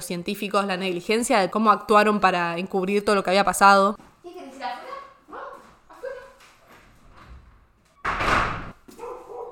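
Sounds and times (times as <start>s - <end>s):
speech: 0.0s - 4.9s
female dog barking to go outside: 8.9s - 9.5s.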